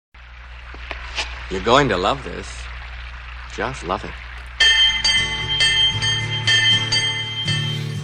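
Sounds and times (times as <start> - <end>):
speech: 1.5 - 2.7, 3.6 - 4.3
bell clanging: 4.6 - 8.0.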